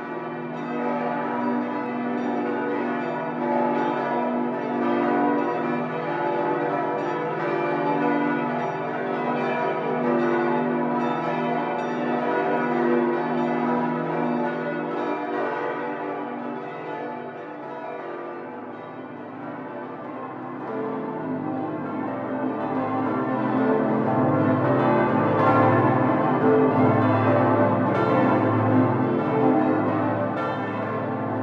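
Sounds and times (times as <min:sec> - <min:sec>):
full peal of sixteen church bells: 0:00.0 - 0:31.4.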